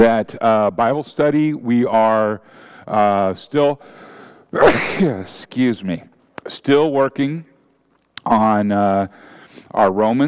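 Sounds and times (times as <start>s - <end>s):
speech: 0.0s - 7.5s, 8.2s - 10.2s
short intake of breath: 2.4s - 2.9s, 3.8s - 4.5s, 9.1s - 9.7s
person sneezing: 4.6s - 5.3s.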